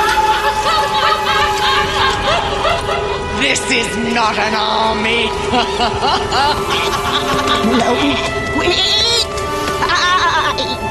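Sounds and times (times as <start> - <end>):
busy hum: 0.0 - 10.9
laughter: 0.0 - 10.9
speech: 3.8 - 9.2
goat bleating: 7.2 - 10.9.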